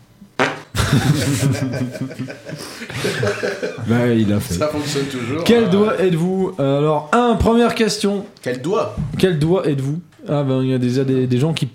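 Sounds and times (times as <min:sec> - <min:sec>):
fart: 0:00.4 - 0:00.7
laughter: 0:00.8 - 0:05.8
speech: 0:00.9 - 0:11.7.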